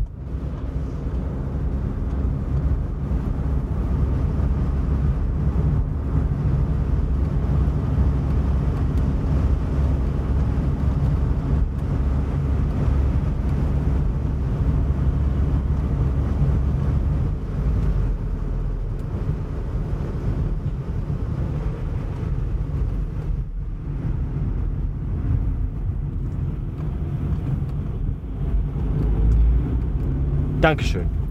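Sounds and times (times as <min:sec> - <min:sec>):
Volkswagen Golf car driving rumble: 0:00.0 - 0:31.2
speech: 0:30.7 - 0:31.2.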